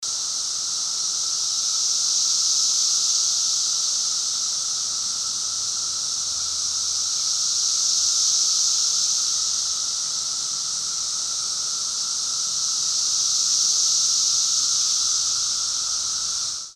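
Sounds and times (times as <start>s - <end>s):
cicadas in the afternoon: 0.0s - 16.7s.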